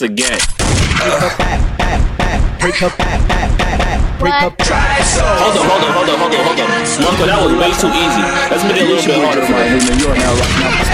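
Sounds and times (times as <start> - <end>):
speech: 0.0 - 2.1, 2.7 - 10.9
loud gunshot sound effects: 0.4 - 2.0, 9.8 - 10.9
laughter: 2.6 - 4.0, 5.2 - 7.7.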